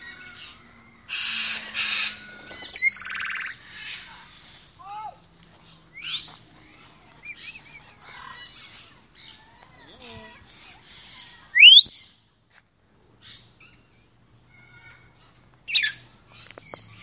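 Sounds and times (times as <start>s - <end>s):
parrot calls: 0.1s - 4.0s, 7.2s - 12.0s
parrot loud sharply rising whistle: 11.6s - 12.0s.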